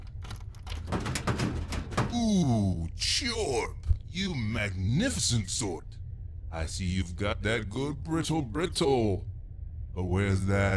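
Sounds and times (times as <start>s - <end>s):
special key working the lock of a drawer: 0.0s - 2.2s
drawer scraping and sliding open: 0.0s - 2.3s
low hum: 0.0s - 10.7s
speech: 2.2s - 5.9s, 6.5s - 9.3s, 10.0s - 10.7s.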